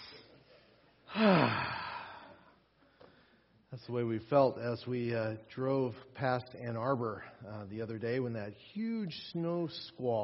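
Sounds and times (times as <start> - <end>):
group of people taking a deep breath together at a morning gathering: 0.0 - 3.6
speech: 3.8 - 10.2.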